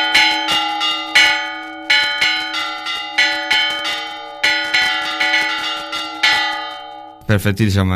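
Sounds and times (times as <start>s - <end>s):
two church bells ringing a traditional storm-warding toll: 0.0s - 7.3s.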